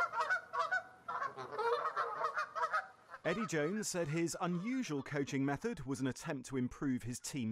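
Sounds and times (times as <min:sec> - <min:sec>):
flock of geese honking: 0:00.0 - 0:05.2
speech: 0:03.2 - 0:07.5.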